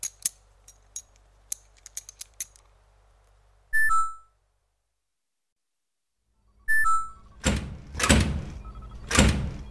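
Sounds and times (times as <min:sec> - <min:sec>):
short electronic beeps: 0:03.7 - 0:04.4, 0:06.6 - 0:07.4
door rattling and thudding as it is pushed shut: 0:07.4 - 0:09.6.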